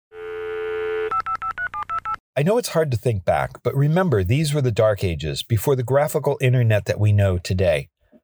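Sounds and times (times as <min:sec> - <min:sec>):
steady telephone dial tone: 0:00.1 - 0:02.2
speech: 0:02.4 - 0:07.9.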